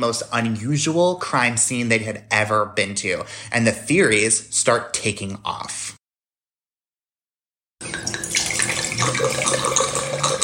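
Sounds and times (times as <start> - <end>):
speech: 0.0 - 6.0
drink pouring into a glass: 7.8 - 10.4.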